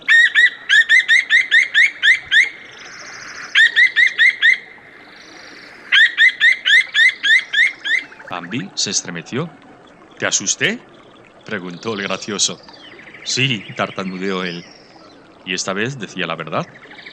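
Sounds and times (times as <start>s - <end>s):
little owl sharp repeated hoots: 0.0s - 8.9s
speech: 8.4s - 9.6s, 10.2s - 14.8s, 15.4s - 16.9s.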